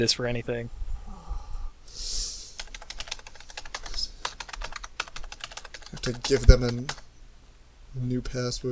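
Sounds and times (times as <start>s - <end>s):
speech: 0.0s - 0.8s, 6.0s - 7.0s, 7.9s - 8.7s
furious typing on a computer keyboard: 2.6s - 7.1s.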